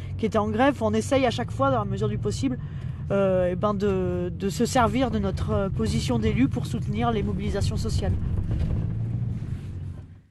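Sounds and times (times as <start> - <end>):
speech: 0.2 - 8.8
strong wind buffeting microphone in a store parking lot on a sunny day: 4.9 - 10.1.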